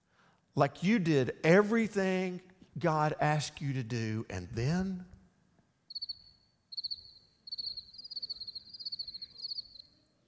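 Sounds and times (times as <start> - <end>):
speech: 0.6 - 5.1
crickets chirping: 5.9 - 10.1.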